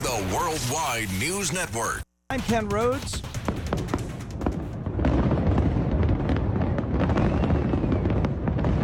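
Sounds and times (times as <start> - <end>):
speech: 0.3 - 3.4
fireworks exploding: 2.3 - 8.8.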